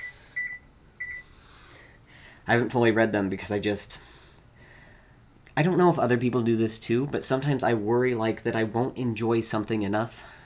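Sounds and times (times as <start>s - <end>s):
electronic timer beeps while setting a timer for cooking eggs: 0.0s - 1.3s
faint steady hum: 0.0s - 10.4s
speech: 2.5s - 4.1s, 5.6s - 10.4s.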